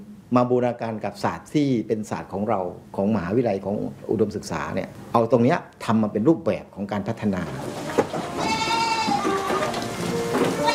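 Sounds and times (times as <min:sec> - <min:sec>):
speech: 0:00.0 - 0:07.8
steady hiss of noise: 0:00.0 - 0:10.7
several goats bleating: 0:07.6 - 0:10.7.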